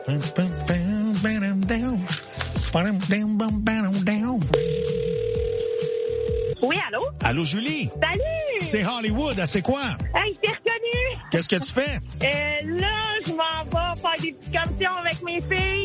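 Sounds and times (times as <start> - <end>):
speech: 0.1 - 0.5, 1.2 - 5.4, 6.6 - 10.6, 11.3 - 15.8
telephone keypad tones as a number is dialed: 4.6 - 6.6.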